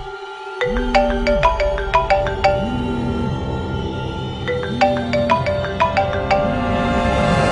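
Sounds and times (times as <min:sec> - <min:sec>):
simple phone ringtone: 0:00.6 - 0:03.3, 0:04.5 - 0:07.3.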